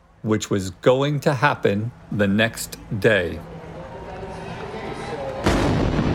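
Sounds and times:
speech: 0.2 - 3.5
murmur of crowd noise: 2.0 - 5.7
bomb explosion: 5.4 - 6.1.

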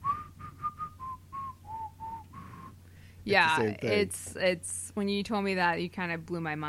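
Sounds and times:
whistled melody riff: 0.0 - 2.8
speech: 3.3 - 6.6.

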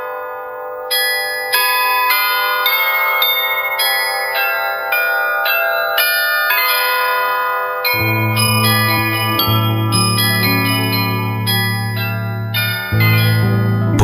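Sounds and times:
church carillon bells playing a melodic tune: 0.9 - 14.0
low sustained drone: 8.0 - 14.0.

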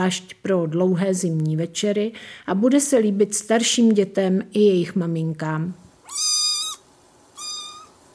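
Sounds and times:
speech: 0.0 - 6.3
cat meowing: 6.0 - 8.0.

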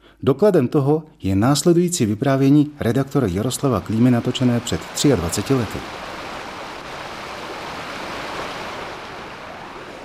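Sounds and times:
speech: 0.2 - 6.2
waterfall roaring out of a pond: 3.4 - 10.0.

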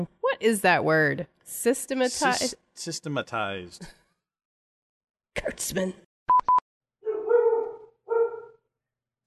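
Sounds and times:
speech: 0.0 - 4.0, 5.4 - 6.0
dog barking: 7.0 - 8.6.

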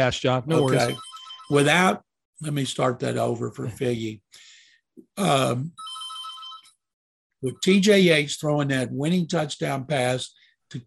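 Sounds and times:
speech: 0.0 - 5.9, 7.4 - 10.8
telephone ringing with an electronic trill: 0.5 - 1.9, 5.7 - 6.8.

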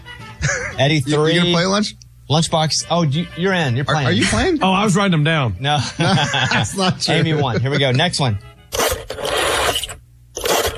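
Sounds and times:
laughter: 0.4 - 0.8, 5.8 - 8.1
speech: 0.5 - 8.5
rotary dial telephone dial spinning back: 8.7 - 10.7.

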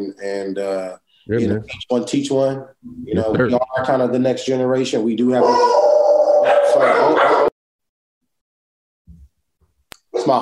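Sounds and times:
speech: 0.0 - 7.5, 10.2 - 10.4
dog barking in a home office: 6.4 - 7.5.

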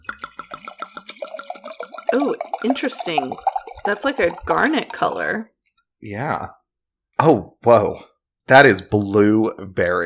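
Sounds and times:
wine glugging from a bottle into a glass: 0.0 - 5.2
speech: 2.1 - 6.6, 7.2 - 10.0.

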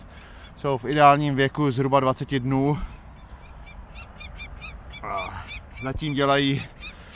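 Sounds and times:
speech: 0.6 - 2.9, 5.8 - 6.8
female peregrine falcon alarm call: 2.8 - 7.1.

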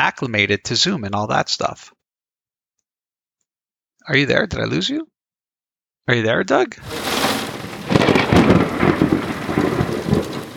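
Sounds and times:
speech: 0.0 - 2.0, 4.0 - 5.1, 6.1 - 7.1
loud rolling rumble of thunder: 6.8 - 10.5
steady rain hissing: 6.8 - 10.5.

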